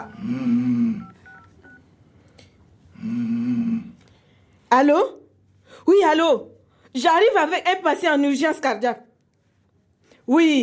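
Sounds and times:
telephone keypad dialing beeps: 0:00.0 - 0:00.3, 0:01.0 - 0:01.8
low buzzing telephone tones: 0:00.0 - 0:01.9
speech: 0:00.2 - 0:00.7, 0:04.7 - 0:05.2, 0:05.8 - 0:09.1, 0:10.3 - 0:10.6.

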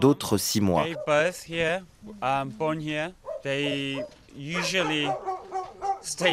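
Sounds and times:
speech: 0:00.0 - 0:05.3, 0:06.0 - 0:06.3
dogs barking, yelping and whimpering on a dog farm in South Korea: 0:00.8 - 0:01.2, 0:03.2 - 0:06.3.

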